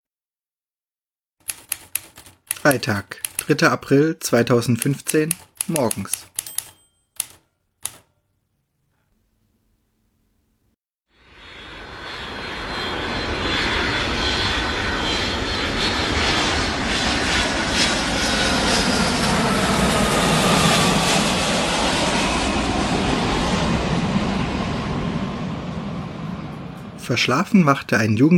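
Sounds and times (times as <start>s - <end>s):
sharp clicks: 1.4s - 8.2s
speech: 2.6s - 6.3s, 27.1s - 28.3s
airplane engines roaring: 11.2s - 28.3s.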